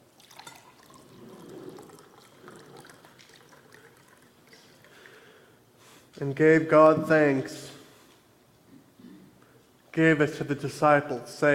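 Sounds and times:
wine pouring into a cup: 0.0s - 5.4s
speech: 6.2s - 7.7s, 10.0s - 11.5s.

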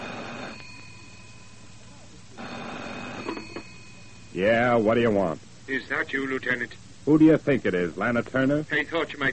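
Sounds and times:
old telephone bell ringing: 0.0s - 1.7s, 2.4s - 4.5s
steady hiss: 0.0s - 9.3s
speech: 4.4s - 9.3s.

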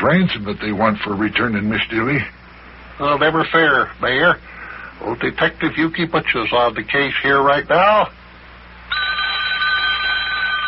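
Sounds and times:
speech: 0.0s - 2.4s, 3.0s - 8.2s
telephone bell ringing: 8.9s - 10.6s.

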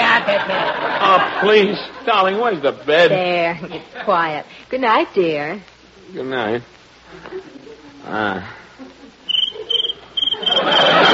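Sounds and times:
laughter: 0.0s - 4.2s, 7.1s - 11.1s
speech: 1.1s - 8.6s, 10.4s - 11.1s
cricket chirping: 9.3s - 11.1s.

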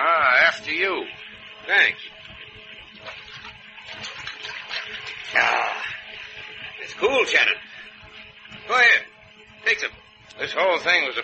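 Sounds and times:
speech: 0.5s - 2.2s, 6.9s - 7.7s, 8.7s - 11.2s
water running like a tap or fountain pouring: 1.7s - 7.6s.

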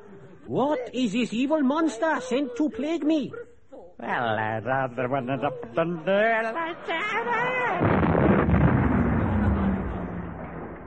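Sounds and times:
speech: 0.5s - 8.1s
explosion sound effect with deep roaring rumble: 7.8s - 10.8s.

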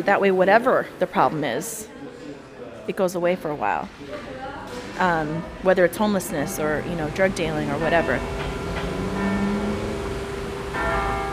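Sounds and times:
speech: 0.0s - 2.0s, 2.9s - 8.5s
church bell ringing: 6.5s - 11.3s.

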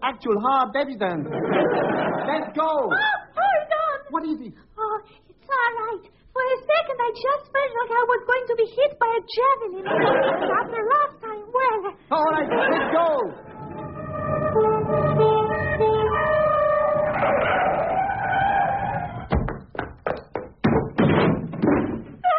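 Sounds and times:
speech: 0.2s - 3.2s, 4.1s - 11.0s, 11.8s - 13.5s
giggling, chattering voices: 9.8s - 11.2s, 11.8s - 13.9s
wavering siren-like tone: 13.4s - 19.2s
door being kicked in with heavy sharp thuds: 18.8s - 22.2s.

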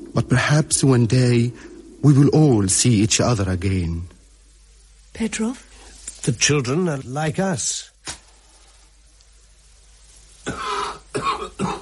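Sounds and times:
speech: 0.3s - 4.1s, 5.2s - 7.9s
man coughing harsh and throaty after lighting a cigarette: 10.4s - 11.8s.

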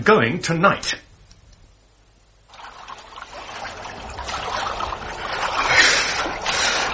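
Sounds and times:
speech: 0.0s - 1.1s
water splashing and sloshing as people swim in cold water: 2.4s - 6.9s.

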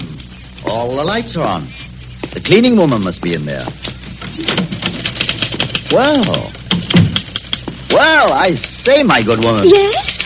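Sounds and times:
speech: 0.6s - 4.7s, 5.9s - 6.6s, 8.0s - 10.1s
typewriter keys clacking: 4.3s - 10.2s.

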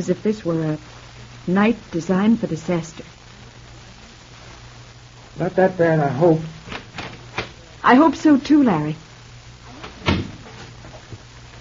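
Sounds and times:
speech: 0.0s - 3.1s, 5.4s - 6.6s, 7.8s - 9.0s
low steady hum: 0.0s - 11.5s
theater stage door opening with a solid thump: 9.9s - 10.4s
theater stage door closing with a softer knock: 10.0s - 10.4s.

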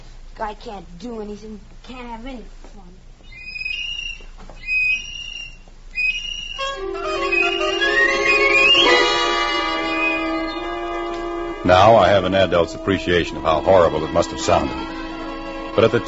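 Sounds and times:
speech: 0.4s - 3.1s, 11.6s - 15.0s, 15.8s - 16.0s
tin whistle blown shrilly: 3.5s - 16.0s.

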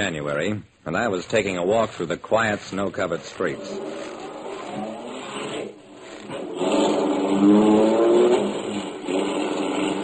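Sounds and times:
speech: 0.0s - 4.1s, 7.4s - 7.9s
car starting and accelerating on a snow-covered street: 3.4s - 10.0s.

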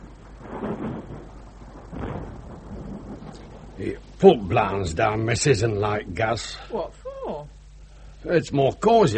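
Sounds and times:
distant thunder rumbling from a passing storm: 0.0s - 5.0s
speech: 3.8s - 7.0s, 8.2s - 9.1s.

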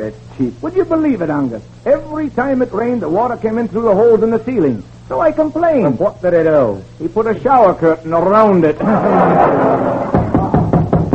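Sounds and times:
speech: 0.0s - 10.1s
steady noise: 0.0s - 11.1s
laughter: 8.8s - 10.5s
knocking on a door: 10.2s - 11.1s.

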